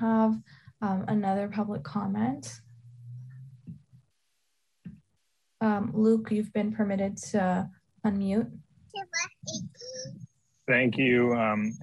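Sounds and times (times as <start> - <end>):
speech: 0.0 - 2.6, 5.6 - 11.8
young child babbling: 9.0 - 10.1.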